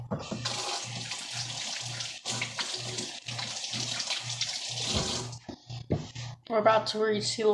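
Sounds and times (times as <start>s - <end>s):
tap water running as someone washes their hands: 0.3s - 5.4s
speech: 6.5s - 7.5s.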